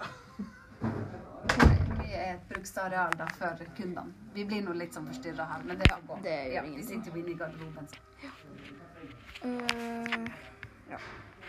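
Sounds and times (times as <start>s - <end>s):
door pushed shut with a firm thud and rattle: 0.8s - 2.2s
movement: 0.8s - 11.4s
speech: 2.6s - 8.8s, 9.4s - 11.4s.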